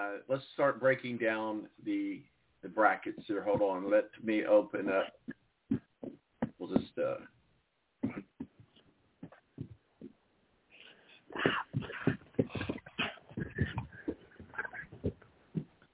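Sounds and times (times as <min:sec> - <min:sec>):
speech: 0:00.2 - 0:05.3, 0:07.0 - 0:07.3
dogs making small grunting noises: 0:08.0 - 0:08.6, 0:11.2 - 0:15.7
dogs snuffling: 0:10.7 - 0:15.9
dogs scrabbling: 0:11.4 - 0:15.8.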